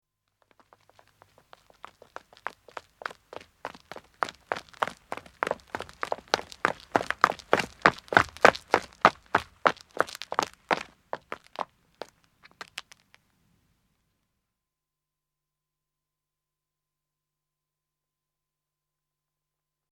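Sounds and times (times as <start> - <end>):
running footsteps of two men on road: 0.4 - 13.1.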